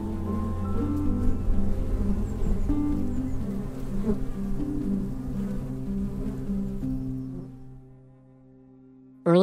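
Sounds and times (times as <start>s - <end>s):
many bees buzzing: 0.0s - 8.8s.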